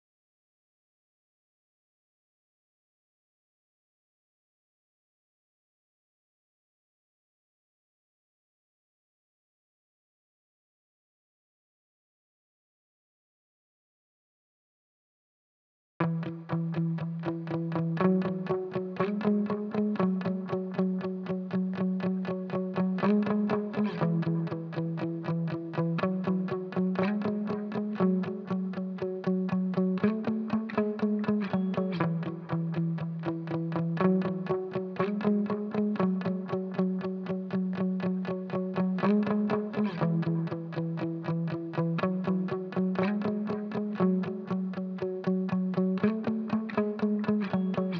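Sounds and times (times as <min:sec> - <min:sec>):
muted guitar in E major: 0:16.0 - 0:47.9.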